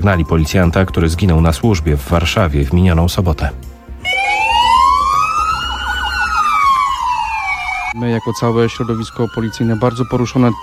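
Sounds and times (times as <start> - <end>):
police car siren wailing outside a police headquarters as a tribute: 0.0 - 1.1, 4.0 - 10.6
speech: 0.0 - 3.7, 8.0 - 10.6.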